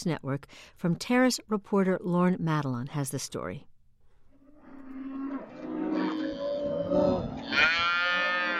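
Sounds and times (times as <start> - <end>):
speech: 0.0 - 3.7
cattle bellowing while being separated: 4.4 - 8.5.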